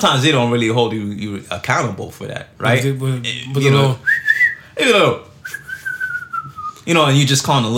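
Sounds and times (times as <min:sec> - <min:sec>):
speech: 0:00.0 - 0:05.6, 0:06.8 - 0:07.7
loud human whistle: 0:04.0 - 0:04.7, 0:05.4 - 0:06.8.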